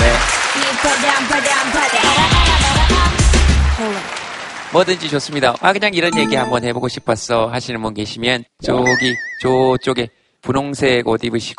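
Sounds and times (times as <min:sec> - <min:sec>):
audience applause: 0:00.0 - 0:06.2
speech: 0:04.7 - 0:11.5.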